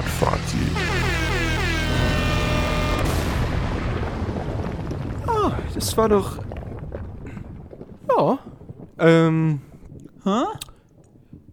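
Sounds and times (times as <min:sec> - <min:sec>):
noisy rumbling crash: 0:00.1 - 0:10.2
podcast segment jingle with brassy horn-like tones: 0:00.6 - 0:03.4
speech: 0:05.8 - 0:06.5, 0:08.2 - 0:10.7.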